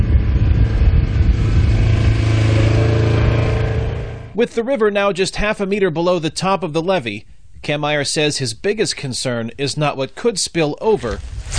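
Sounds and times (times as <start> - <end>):
all-terrain vehicle engine droning while patrolling a levee on the Illinois River: 0.0 - 4.7
speech: 4.4 - 11.5.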